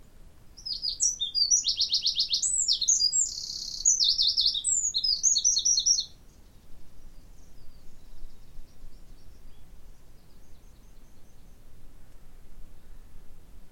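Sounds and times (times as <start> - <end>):
Troglodytes troglodytes singing ringing trills: 0.6 - 11.7.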